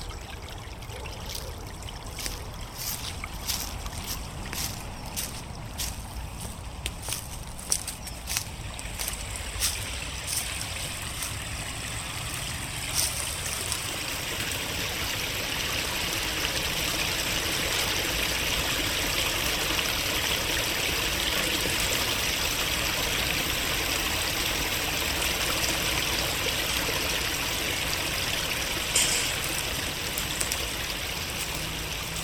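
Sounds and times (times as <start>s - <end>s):
rush of flowing river water: 0.0s - 32.2s
footsteps crunching leaves and twigs on a river path: 1.3s - 14.0s, 29.0s - 32.2s.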